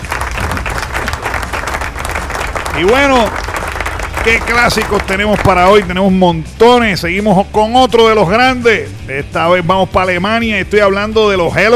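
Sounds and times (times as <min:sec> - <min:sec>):
crowd applauding: 0:00.0 - 0:06.0
speech: 0:02.8 - 0:03.5, 0:04.2 - 0:11.7.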